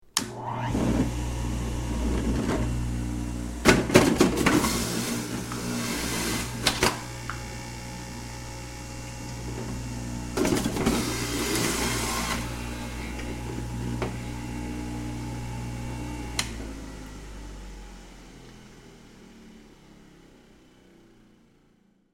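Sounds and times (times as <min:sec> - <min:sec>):
blender running: 0:00.2 - 0:17.6.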